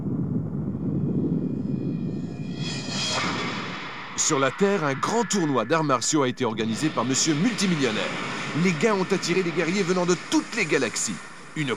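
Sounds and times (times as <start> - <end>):
aircraft engine roaring during takeoff: 0.0 - 11.7
speech: 4.3 - 11.7.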